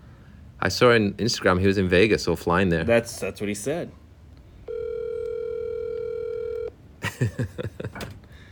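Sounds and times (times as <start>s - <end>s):
speech: 0.6s - 4.0s, 7.2s - 8.0s
electronic phone tone of a call ringing out unanswered: 4.7s - 6.7s
laughter: 7.0s - 8.1s.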